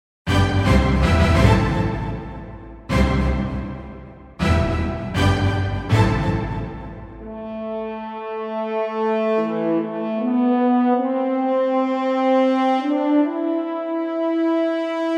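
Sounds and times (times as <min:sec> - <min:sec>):
orchestral fanfare: 0:00.3 - 0:15.0.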